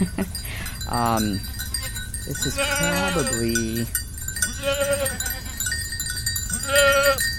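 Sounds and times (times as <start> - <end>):
goat bells clinking and tinkling: 0.0 - 7.3
speech: 0.9 - 1.6, 2.3 - 4.0
herd of goats bleating: 1.4 - 3.7, 4.4 - 5.6, 6.6 - 7.2.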